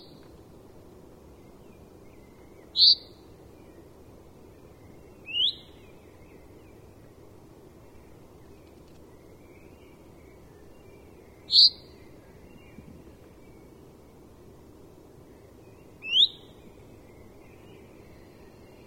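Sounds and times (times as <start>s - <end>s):
common chaffinch Fringilla coelebs calling: 1.4s - 3.9s, 4.5s - 7.0s, 7.8s - 13.8s, 15.3s - 18.8s
speech: 11.5s - 11.8s.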